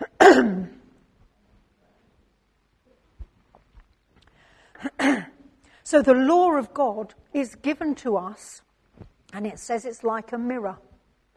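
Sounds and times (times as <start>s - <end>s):
person coughing: 0.0s - 0.8s, 4.8s - 5.4s
speech: 5.9s - 8.7s, 9.3s - 10.9s.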